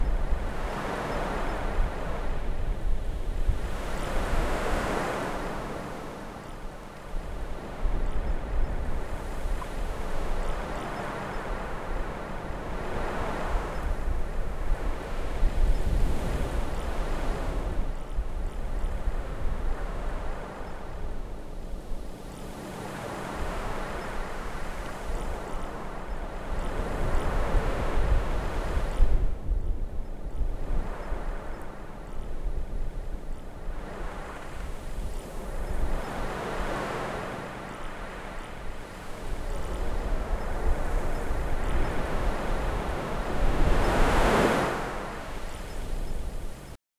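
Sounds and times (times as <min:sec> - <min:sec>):
light waves on a beach: 0:00.0 - 0:46.8.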